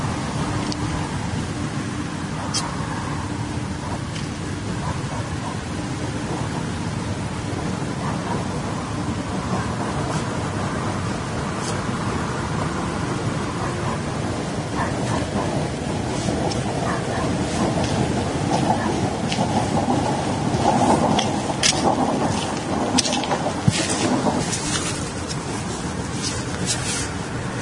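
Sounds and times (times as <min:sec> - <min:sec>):
train rolling past on rails: 0:00.0 - 0:27.6.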